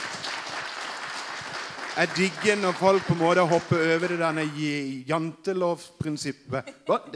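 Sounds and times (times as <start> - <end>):
applause from a small group: 0.0 - 5.0
speech: 2.0 - 7.1.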